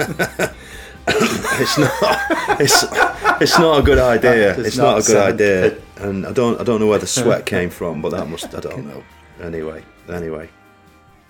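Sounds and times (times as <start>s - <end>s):
laughter: 0.0s - 5.8s, 8.1s - 8.9s
speech: 0.0s - 10.6s
person having a coughing fit: 1.1s - 1.4s.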